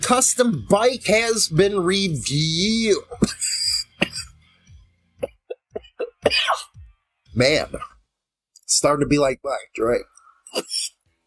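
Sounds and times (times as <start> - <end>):
speech: 0.1 - 3.4, 7.4 - 7.9, 8.7 - 10.8
person with a cold coughing: 3.1 - 4.4, 5.2 - 6.7.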